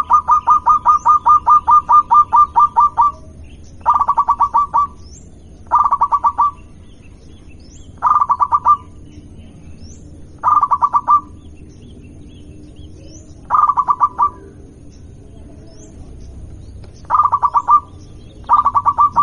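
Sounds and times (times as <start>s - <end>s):
zebra dove giving staccato coos: 0.0s - 5.0s, 5.6s - 6.8s, 8.0s - 9.1s, 10.4s - 11.4s, 12.8s - 19.2s.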